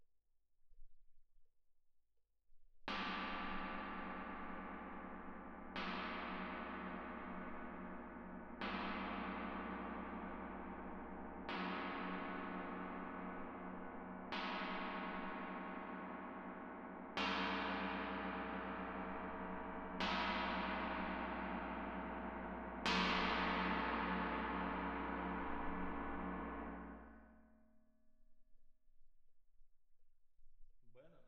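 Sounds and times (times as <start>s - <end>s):
tam-tam strike: 3.5s - 27.3s.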